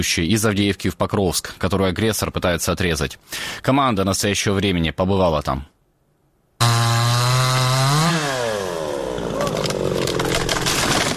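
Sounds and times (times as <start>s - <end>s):
speech: 0.0s - 5.7s
chainsaw cutting damaged trees into firewood: 6.6s - 11.1s.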